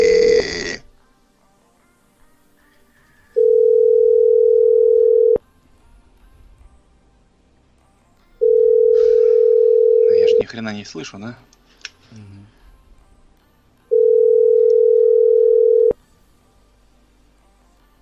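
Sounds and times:
telephone ringback tones after a number is dialled: 0:03.4 - 0:05.4, 0:08.4 - 0:10.5, 0:13.9 - 0:16.0
speech: 0:10.6 - 0:12.2.

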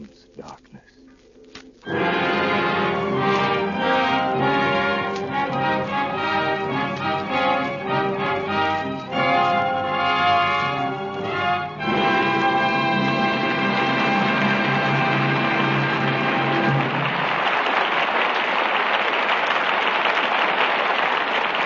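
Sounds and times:
sustained orchestral chord: 0:01.8 - 0:17.1
speech: 0:01.9 - 0:02.1
studio audience applauding: 0:01.9 - 0:21.6.

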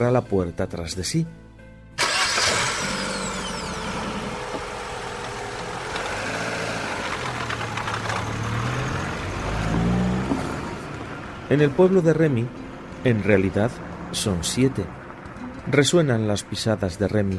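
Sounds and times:
speech: 0:00.0 - 0:01.4, 0:11.5 - 0:15.0, 0:15.6 - 0:17.3
car engine starting and revving as it drives off: 0:02.0 - 0:15.4.

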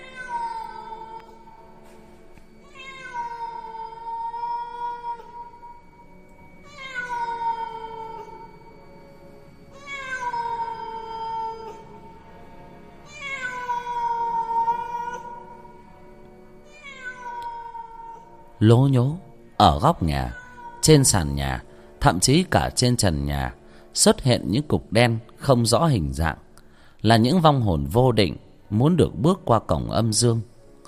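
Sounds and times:
feral cat yowling eerily: 0:00.0 - 0:01.6, 0:02.6 - 0:06.0, 0:06.6 - 0:08.7, 0:09.7 - 0:12.2, 0:13.0 - 0:15.8, 0:16.6 - 0:18.4, 0:20.0 - 0:21.4
speech: 0:18.6 - 0:26.4, 0:27.0 - 0:30.5.

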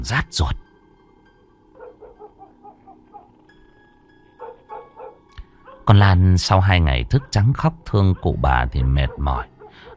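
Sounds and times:
speech: 0:00.0 - 0:00.6, 0:05.9 - 0:09.5
dogs barking at night: 0:01.7 - 0:09.9.

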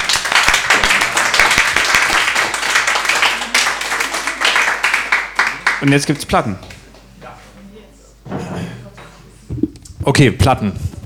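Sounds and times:
audience applause after an entertainer's set: 0:00.0 - 0:06.8
speech: 0:05.8 - 0:06.7, 0:10.1 - 0:10.9.

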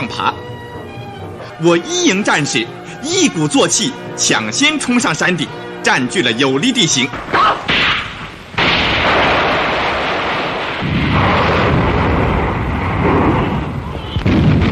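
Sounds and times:
speech: 0:00.0 - 0:00.6, 0:01.6 - 0:07.8
artillery fire of a general assault at Fenghuang Mountain: 0:07.1 - 0:14.7.

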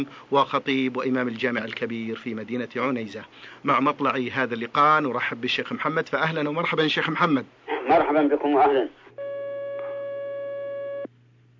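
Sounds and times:
speech: 0:00.0 - 0:09.0
telephone line tone of an incoming call: 0:09.2 - 0:11.1.

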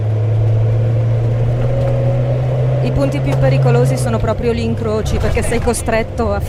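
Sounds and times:
trucks and heavy road traffic passing close by at a busy intersection: 0:00.0 - 0:06.4
speech: 0:03.0 - 0:06.4.

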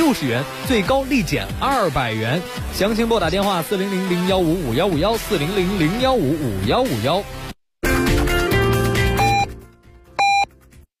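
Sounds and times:
music: 0:00.0 - 0:10.9
speech: 0:00.1 - 0:07.4
hourly time-signal pips on a Beijing city radio station: 0:09.2 - 0:09.5, 0:10.2 - 0:10.5.

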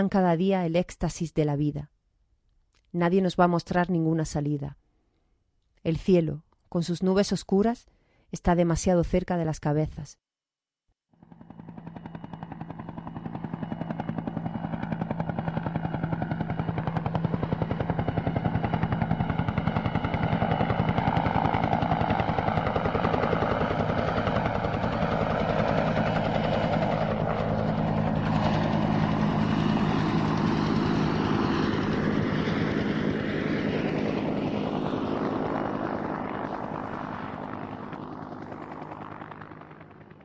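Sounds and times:
speech: 0:00.0 - 0:02.0, 0:02.9 - 0:04.8, 0:05.8 - 0:10.2
low-flying helicopters crossing through clouds: 0:11.1 - 0:40.2.

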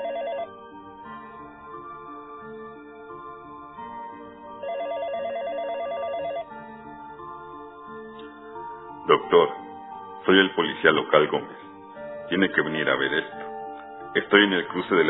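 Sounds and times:
telephone ringing with a warbling trill: 0:00.0 - 0:00.7, 0:04.6 - 0:06.6
sustained tonal backdrop: 0:00.0 - 0:15.0
speech: 0:09.1 - 0:09.6, 0:10.3 - 0:11.6, 0:12.3 - 0:13.4, 0:14.1 - 0:15.0.

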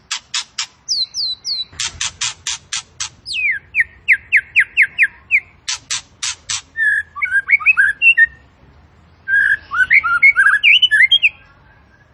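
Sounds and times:
Tembakan bird singing actively: 0:00.9 - 0:01.8, 0:03.2 - 0:05.5, 0:06.8 - 0:08.4, 0:09.2 - 0:12.1.

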